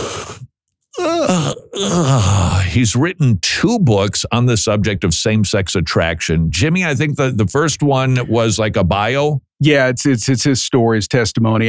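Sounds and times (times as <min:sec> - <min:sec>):
person imitating a yawn: 0:00.0 - 0:02.8
speech: 0:01.0 - 0:11.6.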